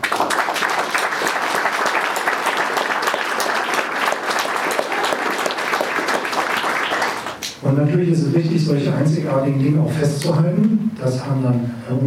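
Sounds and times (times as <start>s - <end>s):
sustained applause from a sizable audience: 0.0s - 7.5s
speech: 7.7s - 12.0s.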